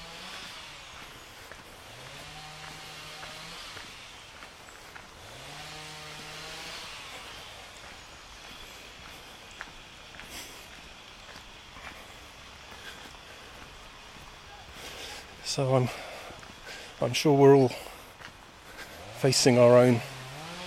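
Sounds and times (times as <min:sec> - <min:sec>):
chainsaws droning: 0:00.0 - 0:20.6
speech: 0:15.6 - 0:16.1, 0:17.0 - 0:17.9, 0:19.2 - 0:20.1.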